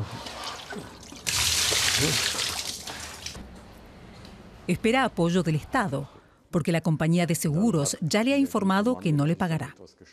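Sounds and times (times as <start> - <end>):
water splashing and trickling inside a flooded room: 0.0 - 3.4
speech: 2.0 - 2.4, 4.7 - 10.1.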